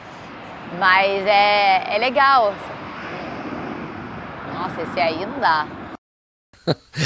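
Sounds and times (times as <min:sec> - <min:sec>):
airplane passing overhead: 0:00.0 - 0:06.0
speech: 0:00.7 - 0:02.7, 0:04.6 - 0:05.8, 0:06.6 - 0:07.0
laughter: 0:06.6 - 0:07.0.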